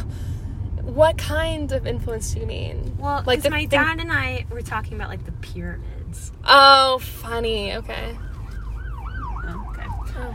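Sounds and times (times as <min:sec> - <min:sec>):
low rumble of road noise: 0:00.0 - 0:10.3
speech: 0:01.0 - 0:08.3, 0:10.2 - 0:10.3
emergency vehicle siren wailing: 0:07.9 - 0:10.3.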